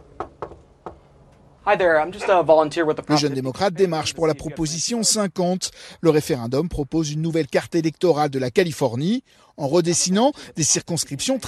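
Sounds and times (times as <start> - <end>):
knocking on the front door of a house in Manhattan Beach: 0.0 - 1.0
speech: 1.6 - 11.4.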